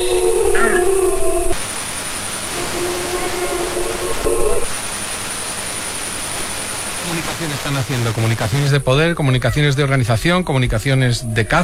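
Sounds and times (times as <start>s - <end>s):
adult wolves howling deeply: 0.0s - 1.6s, 2.6s - 4.7s
steady hiss: 0.0s - 11.6s
speech: 7.6s - 11.6s.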